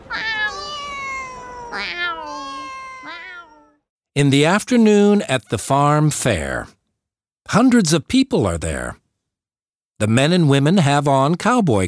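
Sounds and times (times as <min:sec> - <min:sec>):
cat meowing: 0:00.0 - 0:03.8
speech: 0:04.2 - 0:06.8, 0:07.5 - 0:09.0, 0:10.0 - 0:11.8.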